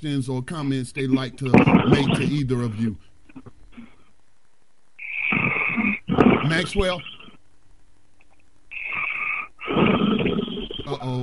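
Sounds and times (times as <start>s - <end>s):
speech: 0.0s - 3.5s, 6.4s - 7.2s, 10.9s - 11.2s
man snoring: 8.8s - 10.9s.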